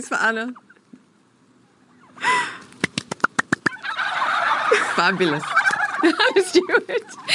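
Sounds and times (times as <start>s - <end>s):
speech: 0.0s - 0.7s, 5.0s - 7.3s
turkeys gobbling and calling: 1.6s - 7.3s
laughter: 4.7s - 5.1s, 5.9s - 7.3s.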